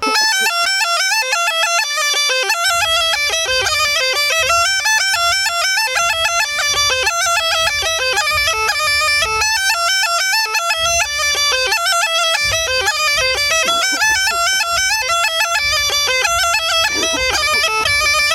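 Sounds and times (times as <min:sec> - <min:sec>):
laughter: 0:00.0 - 0:00.8, 0:12.0 - 0:18.3
small gajda bagpipe playing at full speed: 0:00.0 - 0:18.3.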